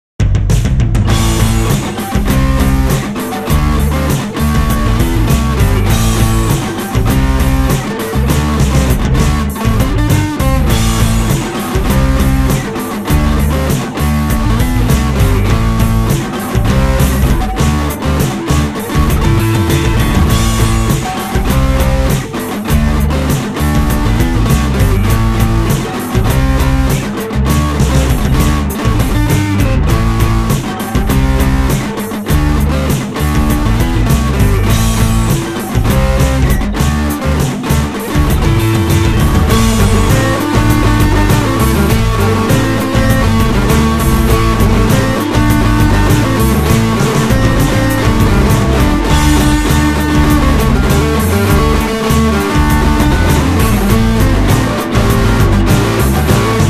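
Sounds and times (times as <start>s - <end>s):
heavy rock solo: 0.7s - 56.6s.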